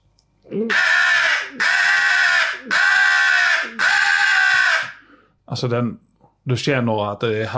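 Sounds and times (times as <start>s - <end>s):
speech: 0.5s - 0.9s, 5.6s - 7.5s
harsh raspy caws blown on a pro crow call pipe: 0.7s - 5.2s.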